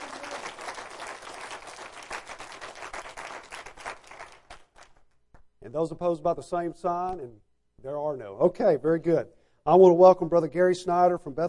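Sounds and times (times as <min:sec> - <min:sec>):
church audience applause: 0:00.0 - 0:04.9
speech: 0:05.7 - 0:11.4.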